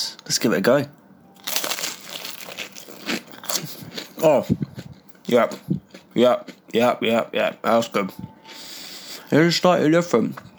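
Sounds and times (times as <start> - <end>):
speech: 0.3 - 1.0, 4.2 - 4.6, 5.3 - 8.3, 9.3 - 10.5
biting into crispy breaded frozen garlic slice: 1.4 - 4.9.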